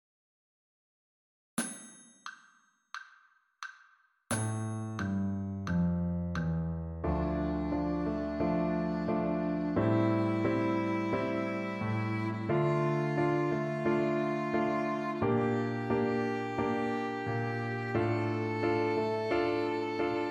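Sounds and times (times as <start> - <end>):
D natural minor scale: 4.7 - 20.3.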